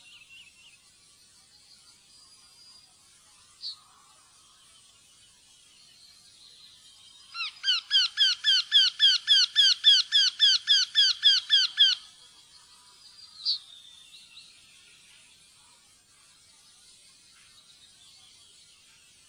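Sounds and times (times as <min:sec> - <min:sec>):
Eurasian wryneck calling in a nasal ringing series: 0:07.4 - 0:12.1.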